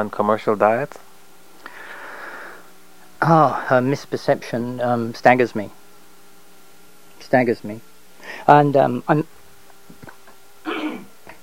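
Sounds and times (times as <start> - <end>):
speech: 0.0 - 1.1, 3.2 - 5.8, 7.2 - 9.3
cough or throat-clearing burst: 10.6 - 11.1.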